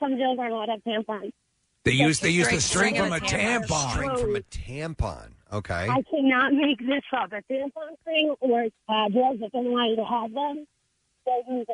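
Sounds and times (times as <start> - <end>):
speech: 0.0 - 11.7
caller's muffled narrow-band distorted voice over a phone line: 1.9 - 6.0.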